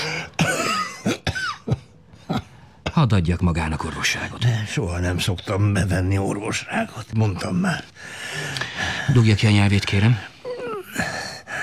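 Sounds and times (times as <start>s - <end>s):
person coughing harshly in a cold house: 0.0s - 2.4s
speech: 3.0s - 10.3s.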